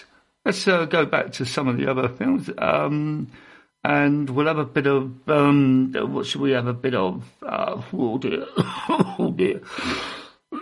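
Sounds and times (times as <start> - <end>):
speech: 0.0 - 10.2
person clearing throat: 8.4 - 10.6
person coughing: 8.4 - 10.6.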